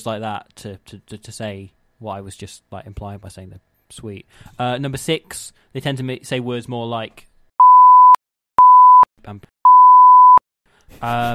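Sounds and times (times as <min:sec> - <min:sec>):
speech: 0:00.0 - 0:07.3, 0:09.2 - 0:09.5, 0:10.9 - 0:11.3
censor bleep tones over swear words: 0:07.6 - 0:10.4.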